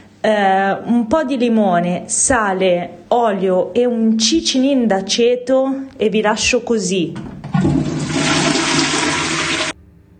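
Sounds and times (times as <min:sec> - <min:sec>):
speech: 0:00.2 - 0:07.3
toilet flushing: 0:07.1 - 0:09.8.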